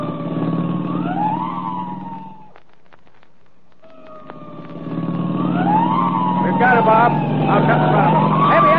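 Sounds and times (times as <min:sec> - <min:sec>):
police car siren wailing: 0:00.0 - 0:02.8, 0:03.8 - 0:08.7
low engine rumble: 0:00.0 - 0:08.7
faint clicks: 0:02.5 - 0:05.2.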